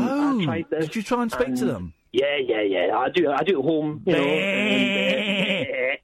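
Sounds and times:
speech: 0:00.4 - 0:06.0
person imitating a sheep bleat: 0:04.1 - 0:06.0.

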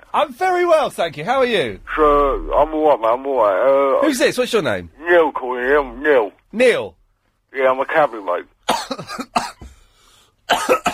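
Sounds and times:
speech: 0:00.1 - 0:09.2
man coughing harshly: 0:08.7 - 0:09.8, 0:10.5 - 0:10.9.

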